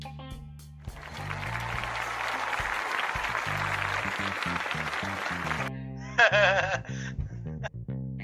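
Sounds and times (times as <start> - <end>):
large crowd clapping: 0.9 - 5.7
laughter: 1.0 - 7.1.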